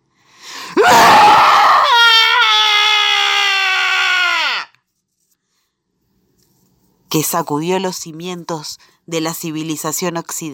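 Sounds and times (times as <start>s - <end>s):
man's wild scream: 0.8s - 4.8s
speech: 7.1s - 10.5s.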